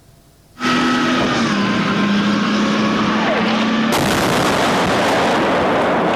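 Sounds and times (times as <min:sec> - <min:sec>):
mechanical whine and roar: 0:00.0 - 0:06.1
loud blast in urban combat: 0:03.8 - 0:06.1.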